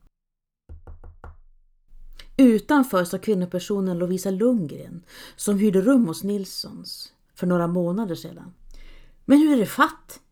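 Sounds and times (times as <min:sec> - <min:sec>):
firm knocks on a door: 0:00.7 - 0:01.4
speech: 0:02.4 - 0:08.6, 0:09.3 - 0:10.2.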